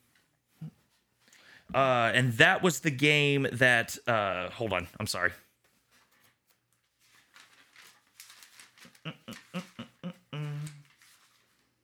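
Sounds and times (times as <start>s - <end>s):
speech: 1.7s - 5.5s
pages being flipped: 5.6s - 11.8s.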